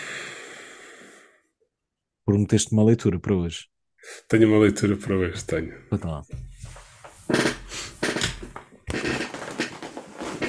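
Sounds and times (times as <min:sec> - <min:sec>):
speech: 0:02.3 - 0:06.5
chair creaking as someone shifts in it: 0:06.6 - 0:10.4.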